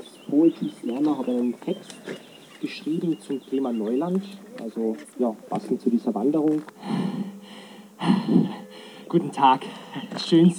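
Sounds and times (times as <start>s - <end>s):
speech: 0.3s - 7.3s, 8.0s - 10.5s
heavy panting breaths of someone out of breath after running: 6.8s - 10.2s.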